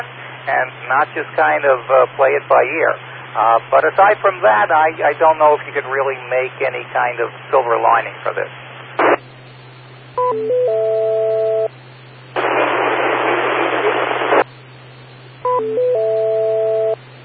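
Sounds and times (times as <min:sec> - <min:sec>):
speech: 0:00.0 - 0:08.6, 0:10.3 - 0:10.7
bursts of dense static from an amateur radio transmission: 0:00.0 - 0:09.8, 0:12.3 - 0:14.5
constant low hum: 0:00.0 - 0:17.2.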